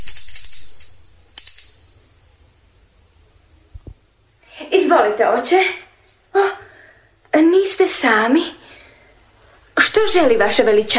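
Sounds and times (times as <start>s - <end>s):
small hand bell shaken briskly: 0.0s - 3.1s
speech: 4.6s - 5.8s, 7.4s - 8.6s, 10.0s - 10.9s.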